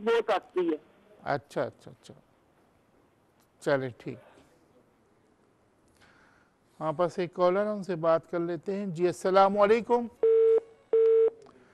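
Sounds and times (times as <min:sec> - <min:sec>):
speech: 0:00.0 - 0:02.3, 0:03.6 - 0:04.3, 0:06.8 - 0:10.2
phone line tones as a call drops: 0:10.2 - 0:11.4.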